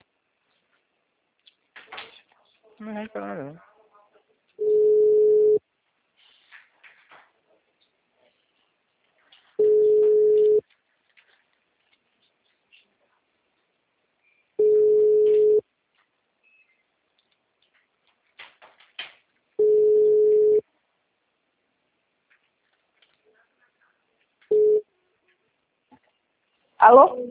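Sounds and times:
speech: 2.8s - 3.7s, 26.8s - 27.3s
telephone busy tone beeps after a dropped call: 4.6s - 5.6s, 9.6s - 10.6s, 14.6s - 15.6s, 19.6s - 20.6s, 24.5s - 24.8s.

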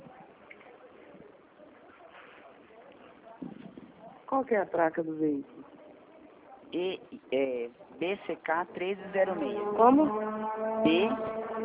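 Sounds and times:
speech: 4.3s - 5.6s, 6.7s - 11.4s
motorcycle engine droning and revving: 9.0s - 11.6s.

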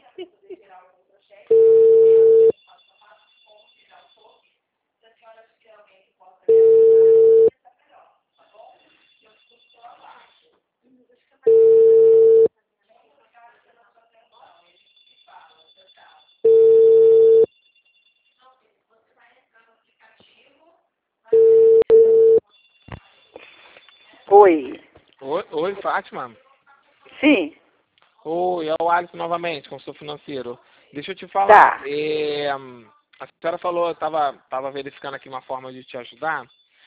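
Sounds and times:
telephone ringback tone while calling someone: 1.5s - 2.5s, 6.5s - 7.5s, 11.5s - 12.5s, 16.4s - 17.6s, 21.3s - 22.4s
speech: 24.4s - 26.4s, 27.2s - 27.6s, 28.2s - 36.6s.

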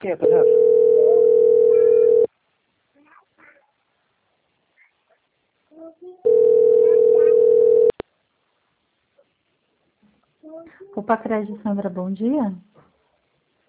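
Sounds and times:
speech: 0.0s - 0.8s, 10.8s - 12.7s
telephone call tone: 0.2s - 2.3s, 6.2s - 8.0s.

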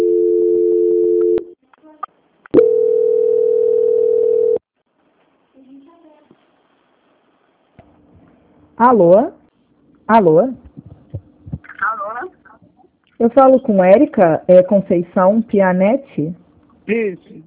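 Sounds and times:
electronic telephone line tones during call transfer: 0.0s - 1.5s, 2.6s - 4.6s
faint scattered noise: 4.8s - 8.8s, 9.4s - 17.4s
speech: 8.8s - 9.4s, 10.1s - 10.6s, 13.2s - 17.4s.

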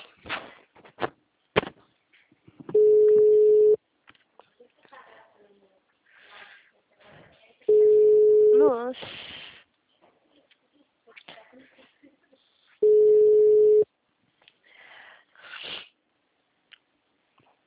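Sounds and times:
faint noise: 0.0s - 17.6s
telephone busy signal steady electronic tone: 2.8s - 3.8s, 7.7s - 8.6s, 12.8s - 13.8s.

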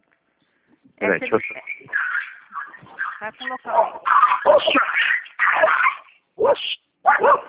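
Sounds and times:
speech: 1.0s - 2.0s, 3.2s - 7.4s
pitbull and small dog fighting, snarling, yelping and whimpering: 1.5s - 7.4s.

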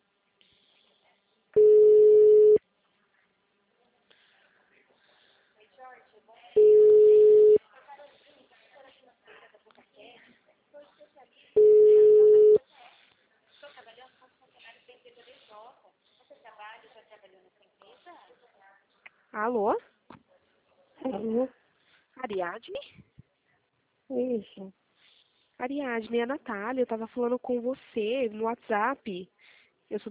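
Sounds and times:
ringback tone of an outgoing phone call: 1.6s - 2.6s, 6.6s - 7.6s, 11.6s - 12.6s
speech: 22.4s - 23.0s, 24.1s - 24.8s, 25.6s - 30.1s.

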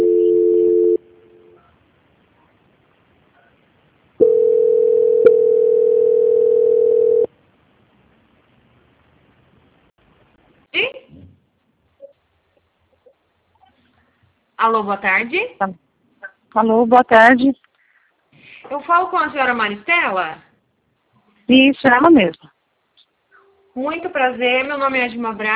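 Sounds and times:
telephone tones as a call is transferred: 0.0s - 1.6s, 4.2s - 7.3s
speech: 14.7s - 15.8s, 16.5s - 17.7s, 18.7s - 20.5s, 21.5s - 22.5s, 23.8s - 25.5s.

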